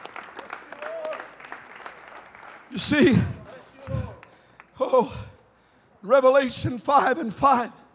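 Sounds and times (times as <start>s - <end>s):
audience clapping hands in praise: 0.0s - 4.7s
speech: 2.7s - 4.0s, 4.9s - 5.2s, 6.1s - 7.8s.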